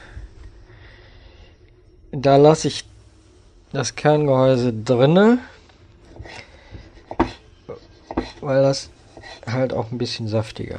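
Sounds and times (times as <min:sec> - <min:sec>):
faint low noise: 0:00.0 - 0:10.7
speech: 0:02.2 - 0:02.9, 0:03.7 - 0:05.5, 0:06.2 - 0:06.5, 0:08.4 - 0:10.7
knife cutting tomatoes being halved and cored: 0:06.2 - 0:08.5.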